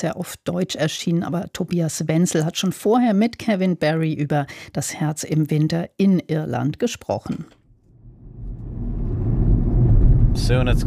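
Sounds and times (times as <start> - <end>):
speech: 0.0 - 7.6, 10.4 - 10.8
car engine driving through countryside: 7.9 - 10.8
road rumble: 7.9 - 10.8.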